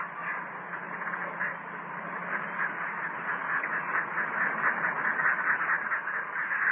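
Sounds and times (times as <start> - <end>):
flock of vultures squawking and grunting while feeding: 0.0 - 6.6.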